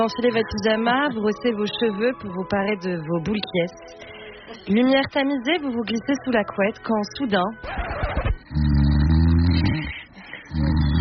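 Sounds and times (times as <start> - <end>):
speech: 0.0 - 8.0
spouse snoring loudly in bed at night: 8.5 - 10.9.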